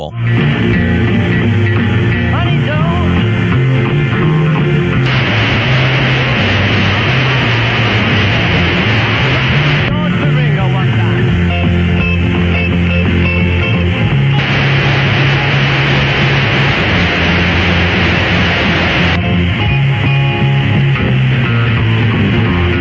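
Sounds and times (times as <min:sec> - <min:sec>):
speech: 0:00.0 - 0:00.9
loud broadband digital sideband hiss interference: 0:00.4 - 0:22.7
AM radio broadcast: 0:05.1 - 0:11.3, 0:14.4 - 0:19.2.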